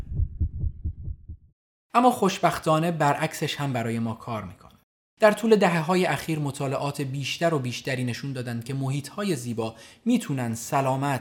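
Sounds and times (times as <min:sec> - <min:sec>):
rapid heartbeat: 0:00.0 - 0:01.5
speech: 0:02.0 - 0:04.6, 0:05.2 - 0:11.2.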